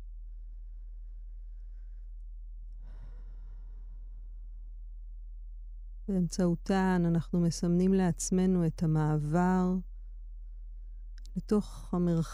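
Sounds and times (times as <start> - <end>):
quiet hum: 0.0 - 12.3
slow deep breath out: 2.8 - 4.4
speech: 6.1 - 9.9, 11.4 - 12.3.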